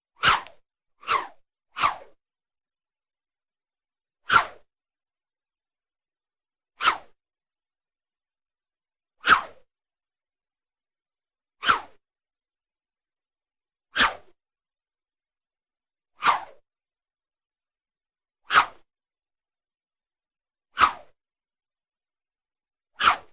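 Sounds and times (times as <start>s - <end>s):
scythe: 0.2s - 2.2s, 4.2s - 4.7s, 6.8s - 7.2s, 9.2s - 9.7s, 11.6s - 12.0s, 14.0s - 14.4s, 16.2s - 16.6s, 18.4s - 18.9s, 20.7s - 21.2s, 23.0s - 23.3s.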